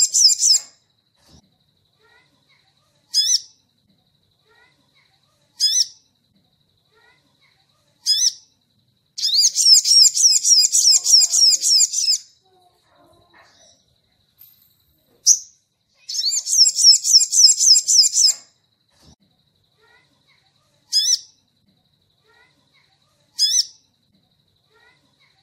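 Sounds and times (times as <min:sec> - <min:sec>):
crimson sunbird high chips: 0:00.0 - 0:00.7, 0:09.2 - 0:12.3, 0:15.2 - 0:18.4
crimson sunbird rapid bright twittering song: 0:00.0 - 0:01.0, 0:02.0 - 0:03.8, 0:04.4 - 0:12.4, 0:15.2 - 0:18.8, 0:19.8 - 0:21.6, 0:22.2 - 0:24.0.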